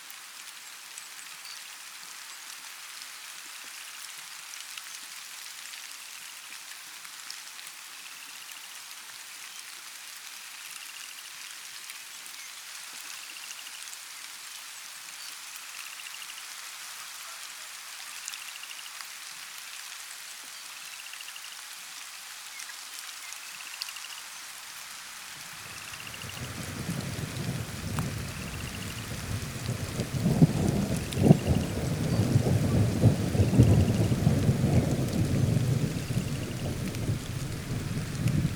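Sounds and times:
light rain pattering: 0.0 - 38.5
deep rolling rumble of thunder: 25.5 - 38.5.

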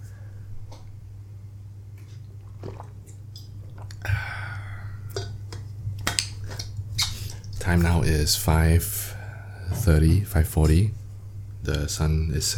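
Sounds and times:
low steady hum: 0.0 - 12.5
person drinking water with gulps and swallows: 2.1 - 7.6
speech: 7.7 - 9.2, 9.8 - 11.0, 11.6 - 12.5.

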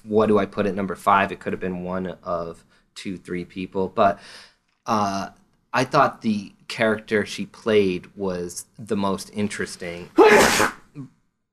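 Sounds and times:
speech: 0.0 - 11.2
person sneezing: 10.2 - 11.1.

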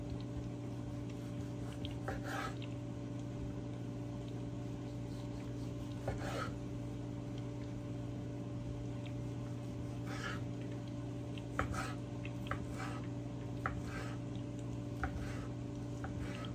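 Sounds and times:
steady low hum: 0.0 - 16.5
tomatoes being sliced and scraped on a cutting board: 1.6 - 2.6, 5.1 - 6.6, 11.5 - 13.0, 13.6 - 14.2, 15.0 - 16.5.

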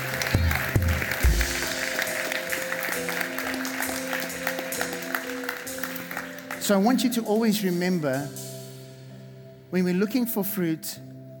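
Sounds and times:
congregation clapping: 0.0 - 6.9
speech: 6.7 - 8.4, 9.7 - 11.1.

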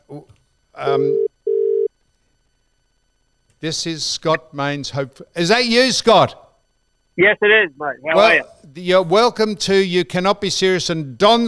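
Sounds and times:
speech: 0.1 - 1.3, 3.6 - 6.4, 7.2 - 11.4
ringback tone of an outgoing telephone call: 0.9 - 1.9.

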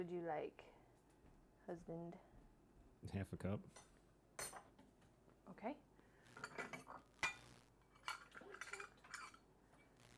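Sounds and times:
speech: 0.0 - 0.8, 1.7 - 2.3, 3.0 - 4.6, 5.5 - 7.1
metal cutlery clinking while fetching a steak knife: 6.4 - 9.4.

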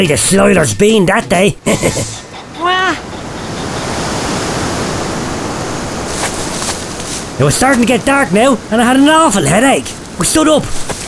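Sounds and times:
speech: 0.0 - 2.2, 2.9 - 3.1, 7.4 - 11.0
strong wind blowing outdoors: 1.7 - 10.2.

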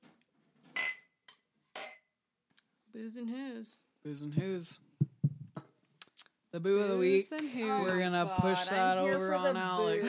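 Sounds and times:
glasses clinking in a toast: 0.8 - 1.2, 1.8 - 2.1
speech: 3.0 - 4.9, 6.5 - 10.0.

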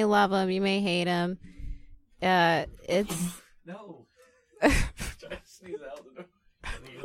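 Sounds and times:
speech: 0.0 - 1.6, 2.2 - 7.0
person sneezing: 3.0 - 3.5
laughter: 4.6 - 7.0.

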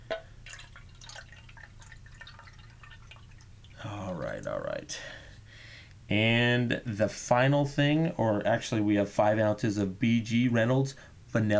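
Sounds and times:
pineapple juice being poured as a drink ingredient: 0.0 - 5.1
speech: 3.9 - 5.2, 6.1 - 11.5.

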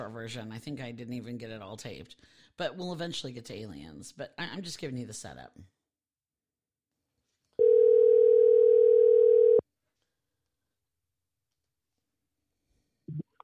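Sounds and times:
speech: 0.0 - 5.8
telephone dial tone while placing a call: 7.6 - 9.6.

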